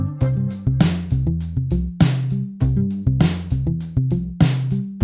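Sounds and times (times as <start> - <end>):
wah groove: 0.2 - 5.0.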